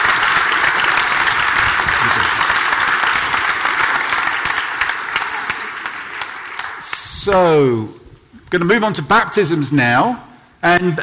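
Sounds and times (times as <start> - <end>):
audience applauding: 0.0 - 7.5
speech: 7.3 - 11.0.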